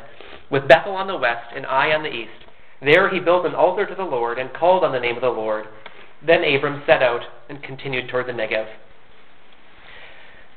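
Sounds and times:
nasal sniffle: 0.0s - 0.5s
speech: 0.5s - 8.9s.

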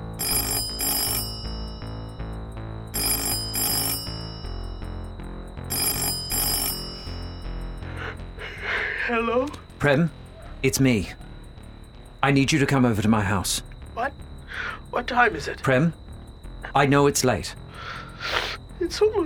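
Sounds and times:
telephone ringing on an outgoing call: 0.0s - 2.3s, 2.9s - 8.0s
steady low tonal backdrop: 0.0s - 19.2s
speech: 9.1s - 11.2s, 12.2s - 13.7s, 14.6s - 16.0s, 16.7s - 19.2s.

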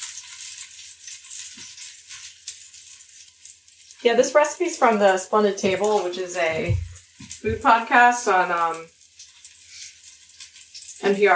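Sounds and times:
scallions sautéing in a pan: 0.0s - 11.3s
speech: 4.0s - 9.0s, 11.1s - 11.3s
soft stirring bumps: 4.1s - 8.5s.

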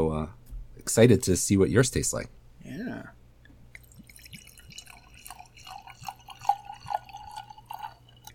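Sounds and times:
speech: 0.2s - 2.4s
sake poured into a wine glass: 3.7s - 8.3s.

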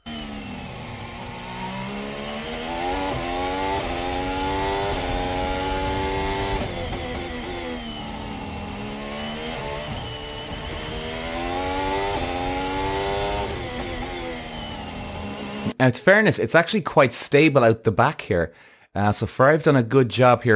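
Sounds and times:
race car engine screaming on a bumpy track: 0.0s - 15.8s
speech: 15.8s - 20.5s.

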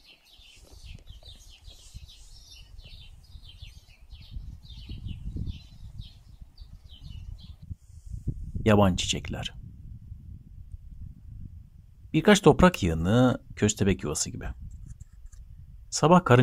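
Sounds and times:
faint birdsong with soft high trills: 0.0s - 7.8s
speech: 8.7s - 9.6s, 12.1s - 14.6s, 16.0s - 16.4s.

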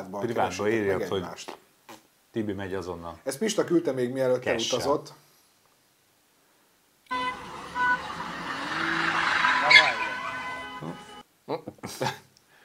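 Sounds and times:
speech: 0.0s - 1.6s, 2.3s - 5.3s, 11.5s - 12.3s
car engine revving hard while drifting in circles: 7.1s - 11.2s
tires squealing in a skid as a car drifts in circles: 7.1s - 11.2s.

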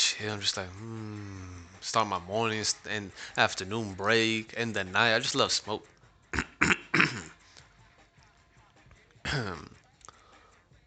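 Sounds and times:
speech: 0.2s - 6.5s, 9.3s - 9.8s
raspy throaty coughs: 6.4s - 7.4s, 9.3s - 9.8s.

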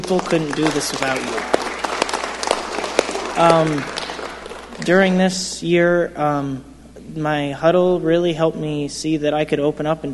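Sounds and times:
audience applause: 0.0s - 5.1s
speech: 0.1s - 1.7s, 3.4s - 4.0s, 4.8s - 10.1s.

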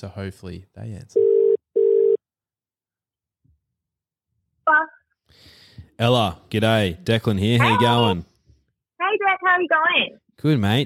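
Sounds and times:
speech: 0.0s - 1.3s, 4.7s - 8.3s, 9.0s - 10.8s
outgoing phone call ringback tone: 1.2s - 2.2s.

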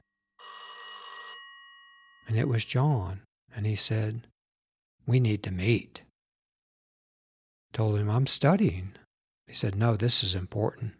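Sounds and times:
old-style telephone bell ringing: 0.0s - 2.3s
speech: 2.3s - 4.3s, 5.0s - 6.0s, 7.7s - 10.9s.

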